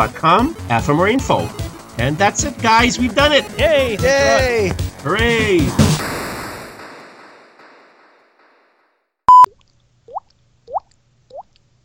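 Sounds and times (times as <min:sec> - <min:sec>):
speech: 0:00.0 - 0:05.9
clear water drips plopping: 0:09.4 - 0:11.7.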